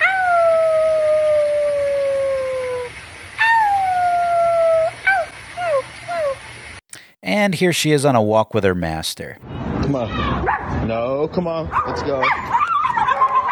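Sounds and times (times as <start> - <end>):
woman howling like a dog in her yard: 0.0 - 6.4, 12.5 - 13.5
speech: 7.4 - 12.6.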